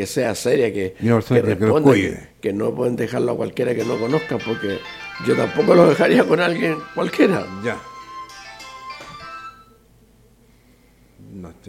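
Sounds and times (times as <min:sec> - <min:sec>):
speech: 0:00.0 - 0:07.9, 0:11.4 - 0:11.6
quiet noise: 0:00.0 - 0:11.6
phone ringtone of an incoming call playing a melodic electronic tune: 0:03.8 - 0:09.8.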